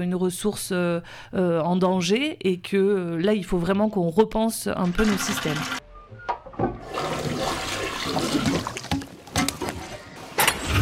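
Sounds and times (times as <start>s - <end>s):
speech: 0.0s - 5.8s
toilet flushing: 4.8s - 5.8s, 6.6s - 10.8s.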